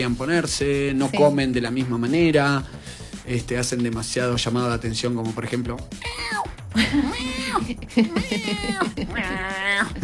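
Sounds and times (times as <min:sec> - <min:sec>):
speech: 0:00.0 - 0:10.0
cat yowling loudly: 0:06.0 - 0:06.5, 0:08.3 - 0:10.0
laughter: 0:06.8 - 0:10.0.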